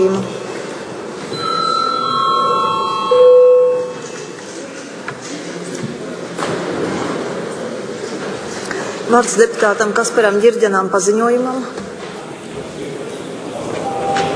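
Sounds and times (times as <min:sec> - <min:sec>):
room noise: 0:00.0 - 0:14.3
electric bell ringing in a parliament chamber: 0:01.3 - 0:04.4
speech: 0:09.1 - 0:11.8.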